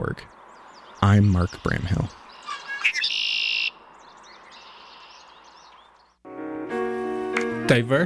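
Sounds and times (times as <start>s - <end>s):
speech: 0.0s - 0.4s, 1.0s - 2.2s, 7.7s - 8.0s
birds singing and chirping in morning air: 0.0s - 6.2s
loud buzzy harmonic bird call: 0.6s - 6.1s.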